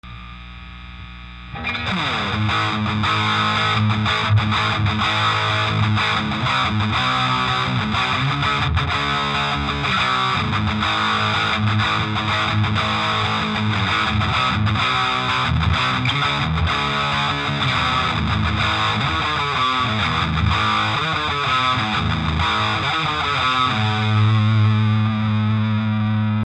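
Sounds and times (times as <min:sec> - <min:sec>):
electric guitar: 0:00.0 - 0:26.4.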